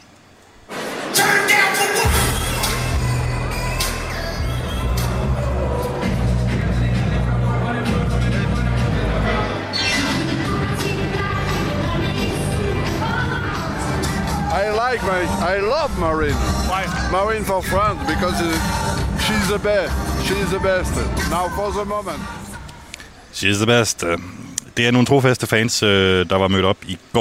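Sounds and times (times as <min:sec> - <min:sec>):
political rally crowd roaring and cheering: 0:00.7 - 0:22.9
loud pounding music with a heavy bass beat at a political rally in France: 0:01.0 - 0:22.6
speech: 0:15.1 - 0:22.4, 0:23.4 - 0:27.1.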